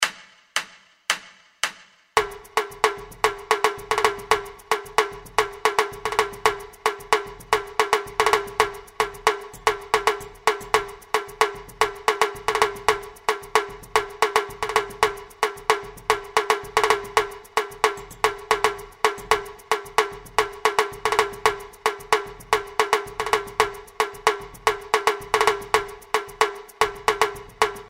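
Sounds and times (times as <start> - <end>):
repique drum playing samba: 2.2 - 27.8.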